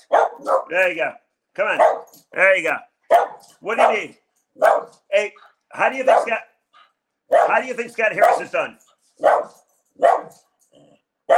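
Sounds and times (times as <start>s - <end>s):
female dog barking: 0.0s - 0.9s, 1.7s - 2.2s, 3.1s - 5.1s, 5.9s - 6.5s, 7.3s - 8.6s, 9.2s - 11.3s
speech: 0.4s - 6.5s, 7.3s - 10.5s.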